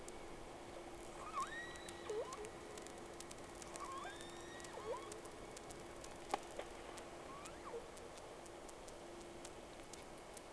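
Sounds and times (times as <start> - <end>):
steady low hum: 0.0 - 10.5
whale whistles with looping tonal sweeps: 1.2 - 2.5, 3.8 - 5.2
scattered sharp clicks: 1.3 - 10.5.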